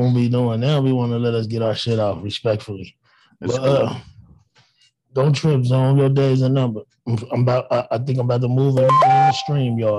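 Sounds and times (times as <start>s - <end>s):
speech: 0.0s - 4.1s, 5.2s - 9.9s
phone alert tones: 8.8s - 9.8s.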